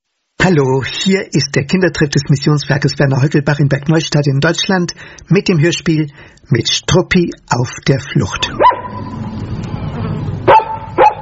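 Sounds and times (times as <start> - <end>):
speech: 0.4 - 9.2
dog barking: 8.5 - 9.2, 10.5 - 11.2.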